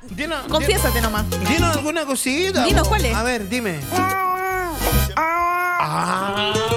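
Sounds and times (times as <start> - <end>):
speech: 0.0 - 4.2, 4.8 - 6.7
cat yowling in mating season: 3.9 - 6.7.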